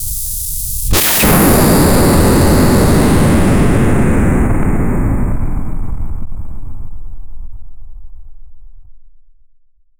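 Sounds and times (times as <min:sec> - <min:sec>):
powerful neutron: 0:00.0 - 0:07.7.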